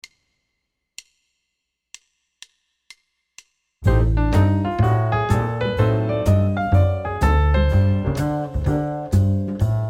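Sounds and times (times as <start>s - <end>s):
diminished chord pattern: 3.8s - 9.8s.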